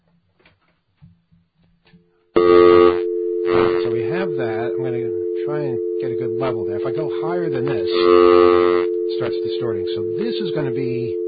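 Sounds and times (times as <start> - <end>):
steady loud telephone dial tone: 2.4 - 11.2
speech: 3.9 - 11.2.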